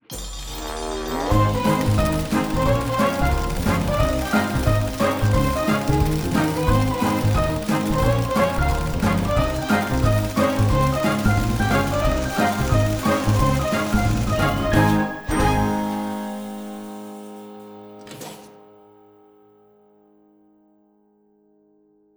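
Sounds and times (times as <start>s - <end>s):
super mega win game jingle: 0.1s - 17.7s.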